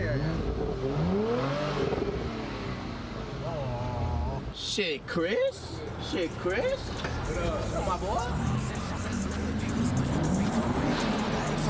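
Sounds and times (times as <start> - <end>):
car engine revving and rumbling: 0.0 - 4.4, 6.7 - 11.6
speech: 4.8 - 8.6.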